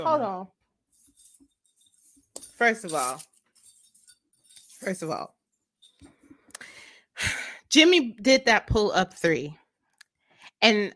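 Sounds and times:
speech: 0.0s - 0.6s, 2.6s - 3.3s, 4.8s - 5.4s, 7.2s - 9.6s, 10.6s - 10.9s
dropped keys jingling: 1.0s - 5.2s.

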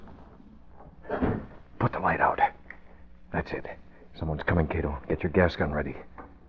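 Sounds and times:
rear door of an office building opening and shutting: 1.0s - 1.6s
speech: 3.4s - 6.1s.

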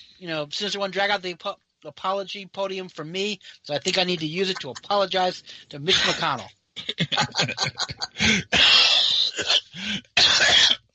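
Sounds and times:
speech: 0.0s - 10.8s
laughter: 3.9s - 5.0s, 5.9s - 8.5s
coughing fit: 5.9s - 10.8s
gasping breaths: 8.1s - 10.2s.

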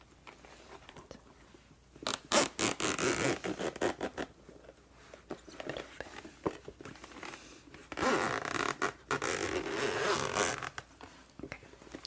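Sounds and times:
zipper on a flat hard headphone case pulled open: 2.1s - 4.3s, 7.9s - 10.8s.

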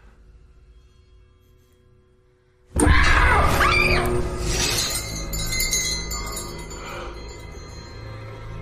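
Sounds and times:
shrill rising cry-like tone: 2.8s - 5.0s
alarm bells ringing and metal crashing in a basement: 4.2s - 8.6s.

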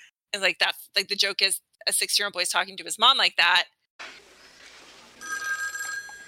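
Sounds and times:
speech: 0.3s - 4.2s
telephone bell ringing: 5.2s - 6.2s.

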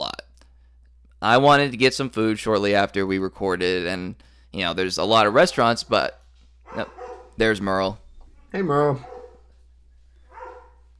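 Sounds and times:
steady low hum: 0.0s - 10.9s
speech: 1.2s - 9.1s
dog barking: 6.6s - 7.4s, 9.0s - 9.5s, 10.2s - 10.9s.

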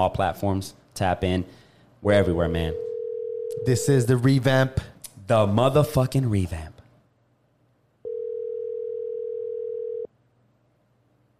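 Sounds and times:
speech: 0.0s - 2.8s, 3.6s - 6.7s
steady electronic phone call ringing tone: 2.8s - 3.7s, 8.0s - 10.1s.

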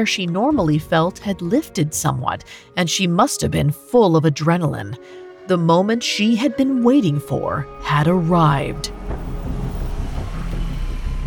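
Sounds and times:
speech: 0.0s - 9.2s
car engine rumbling as the car slows and stops: 7.6s - 11.2s.

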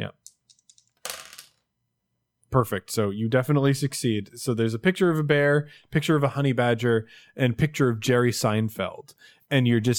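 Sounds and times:
two dice clattering on a hard surface: 0.2s - 1.6s
speech: 2.5s - 9.9s.

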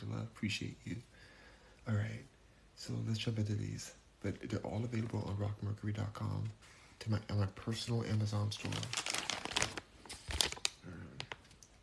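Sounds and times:
speech: 0.3s - 1.1s, 1.8s - 9.1s
plastic packaging crinkling as it is handled for ASMR: 8.3s - 11.7s.

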